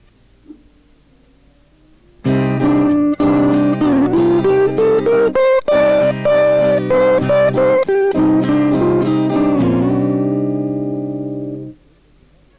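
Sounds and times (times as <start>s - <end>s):
steady C-minor backing track: 2.2s - 11.8s
sustained instrumental melody using second and ninth colour tones: 2.3s - 11.8s.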